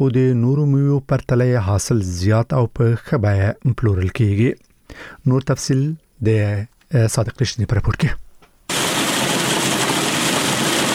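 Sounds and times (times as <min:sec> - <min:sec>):
speech: 0:00.0 - 0:08.2
pistachio cleaning machines running in Kandahar: 0:08.7 - 0:10.9.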